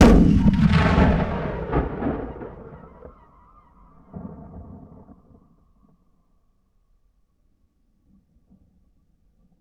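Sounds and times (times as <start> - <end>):
period combat cannon blast: 0.0 - 3.4.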